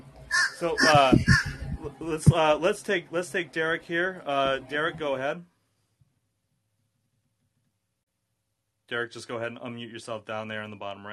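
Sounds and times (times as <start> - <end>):
crow cawing: 0.3 - 1.6
speech: 0.6 - 5.5, 8.9 - 11.1.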